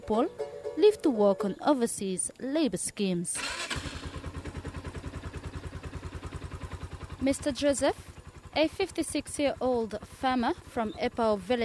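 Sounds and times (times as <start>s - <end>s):
speech: 0.1s - 4.0s, 7.2s - 11.6s
motorbike engine running while ridden to a lemon farm on Efate: 3.4s - 11.6s.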